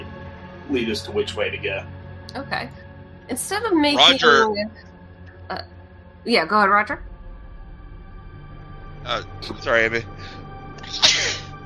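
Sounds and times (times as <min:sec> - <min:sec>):
laughter: 0:00.7 - 0:01.8, 0:03.8 - 0:04.6, 0:09.4 - 0:11.4
speech: 0:00.7 - 0:04.9, 0:05.5 - 0:07.1, 0:09.0 - 0:11.0
sneeze with inhaled lead-in: 0:04.0 - 0:04.4, 0:10.8 - 0:11.5.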